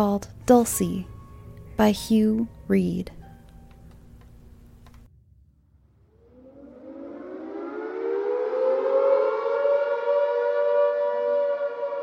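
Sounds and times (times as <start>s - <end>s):
speech: 0.0s - 1.1s, 1.8s - 3.2s
air raid siren wailing: 5.7s - 12.0s.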